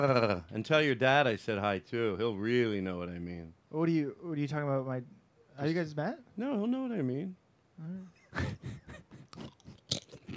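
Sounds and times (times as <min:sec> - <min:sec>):
speech: 0:00.0 - 0:09.5
crunching and chewing food against the microphone: 0:09.3 - 0:10.3.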